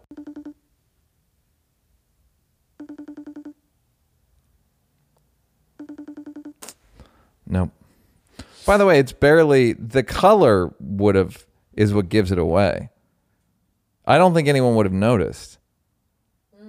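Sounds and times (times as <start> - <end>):
video call ringtone: 0.0 - 0.6, 2.8 - 3.6, 5.8 - 6.7
speech: 7.5 - 7.8, 8.7 - 12.9, 14.1 - 15.6.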